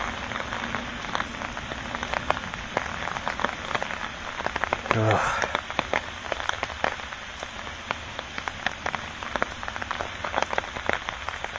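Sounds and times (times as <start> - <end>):
rain on a hard surface: 0.0 - 11.5
speech: 5.0 - 5.6.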